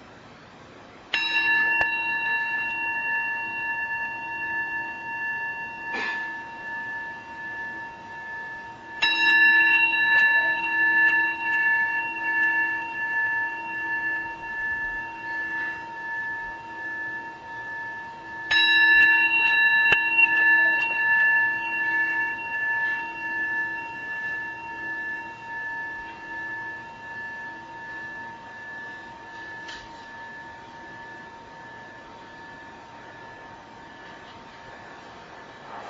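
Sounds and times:
meditation bell ringing: 1.0 - 35.8.

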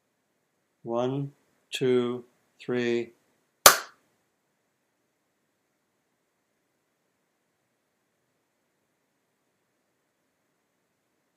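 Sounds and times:
speech: 0.8 - 3.2
single sharp hand clap: 3.7 - 4.0.

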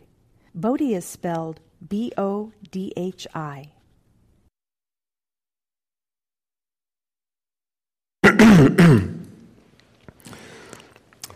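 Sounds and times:
speech: 0.6 - 3.8
harsh raspy throat-clearing coughs: 8.2 - 9.4.

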